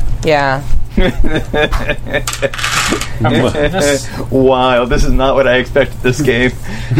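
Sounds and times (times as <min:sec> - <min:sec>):
speech: 0:00.2 - 0:06.9
laughter: 0:00.9 - 0:04.3, 0:06.2 - 0:06.9
many dice rolled in a batch during a tabletop game: 0:02.3 - 0:03.2.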